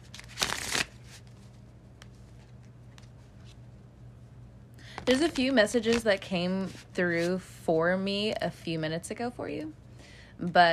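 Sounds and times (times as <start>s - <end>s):
deck of tarot cards riffle shuffled: 0.0s - 3.6s, 5.0s - 7.4s
speech: 5.1s - 9.8s, 10.4s - 10.7s.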